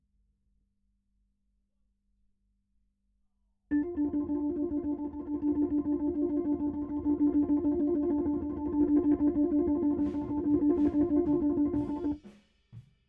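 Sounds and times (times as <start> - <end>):
Hammond organ: 3.7 - 12.2.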